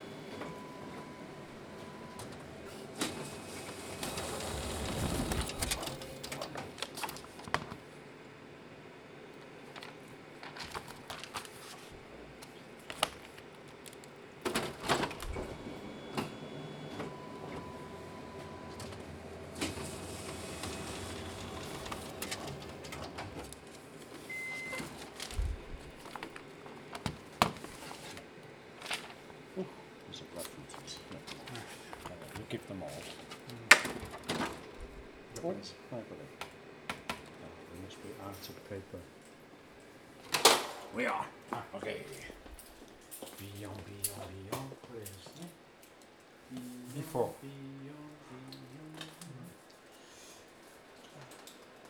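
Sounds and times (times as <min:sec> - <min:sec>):
photocopier: 0:00.0 - 0:51.8.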